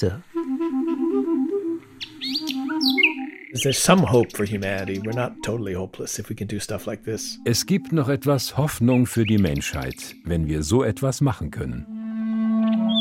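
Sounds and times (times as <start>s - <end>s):
speech: 0.0s - 0.3s, 2.8s - 11.9s
steady woodwind-like melody: 0.0s - 11.0s, 11.7s - 13.0s
nightingale trilling and whistling: 2.0s - 10.7s, 12.6s - 13.0s
man speaking loudly: 3.6s - 11.8s.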